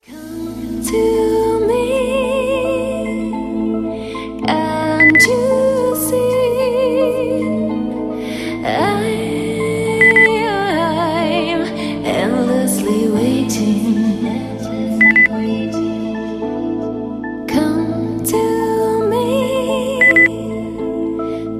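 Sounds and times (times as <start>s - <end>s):
person singing: 0.0s - 16.9s, 17.5s - 21.5s
endlessly waiting beep: 5.0s - 5.3s, 10.0s - 10.3s, 15.0s - 15.3s, 20.0s - 20.3s.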